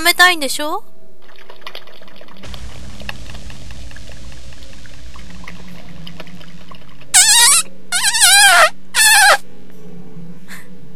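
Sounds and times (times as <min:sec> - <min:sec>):
speech: 0:00.0 - 0:00.9
squeaky high-pitched fart sounds: 0:07.1 - 0:09.4.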